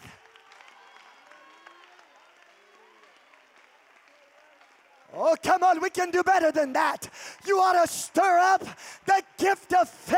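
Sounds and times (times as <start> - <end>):
large audience applauding: 0.0 - 10.1
several voices calling out and cheering: 0.0 - 10.1
speech: 5.1 - 10.1.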